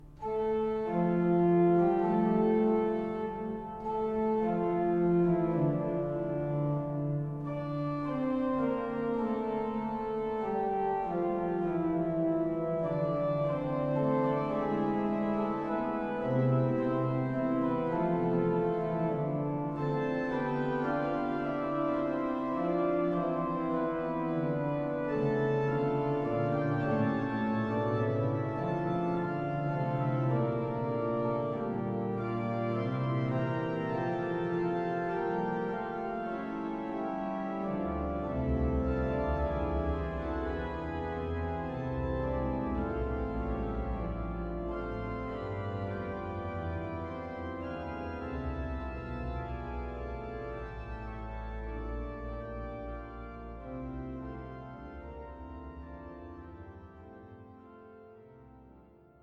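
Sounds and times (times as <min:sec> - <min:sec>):
sonata fugue played sostenuto e legato: 0:00.0 - 0:59.2.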